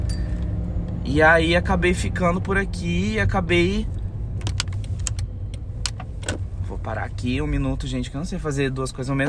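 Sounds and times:
car engine rumble while parking: 0.0 - 9.2
speech: 1.1 - 4.0, 6.8 - 9.2
sharp clicks and ticks in a car cabin: 4.4 - 6.4.

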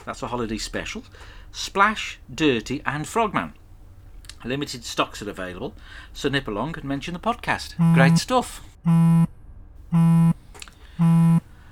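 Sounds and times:
speech: 0.0 - 3.6, 4.4 - 10.4
phone ringing for an incoming call from an unknown caller: 7.8 - 8.2, 8.9 - 9.3, 9.9 - 10.4, 11.0 - 11.4.

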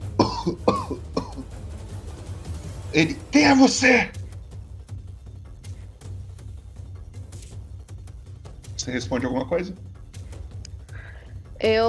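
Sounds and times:
person coughing for a character in a tabletop role-playing game: 0.2 - 1.5
speech: 0.4 - 0.7, 2.9 - 4.2, 8.8 - 9.9, 11.6 - 11.8.

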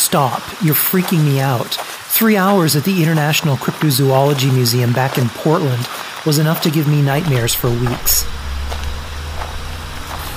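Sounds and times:
faint road hiss: 0.0 - 10.3
speech: 0.1 - 8.4
car engine rumbling on a road: 7.1 - 10.3.

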